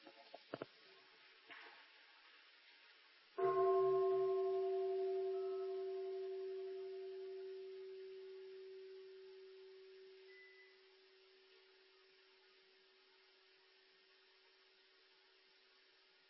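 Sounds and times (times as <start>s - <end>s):
single deep bell struck and ringing: 3.4s - 11.8s.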